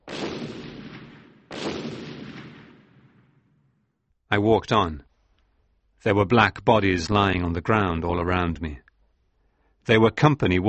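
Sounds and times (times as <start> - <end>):
excavation blasting explosions: 0.0 - 3.5
speech: 4.3 - 5.1, 6.0 - 8.8, 9.8 - 10.6.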